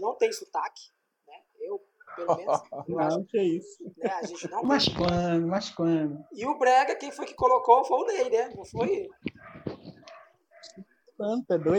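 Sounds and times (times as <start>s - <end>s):
speech: 0.2s - 1.0s, 1.6s - 9.6s, 10.6s - 11.7s
dog barking: 2.0s - 2.5s, 9.3s - 11.7s
laughter: 2.2s - 2.9s, 3.9s - 4.6s.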